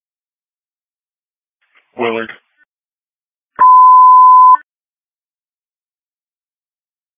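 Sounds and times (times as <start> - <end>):
speech: 1.9 - 2.4
iPhone crash detection notification call tone beep: 3.6 - 4.6.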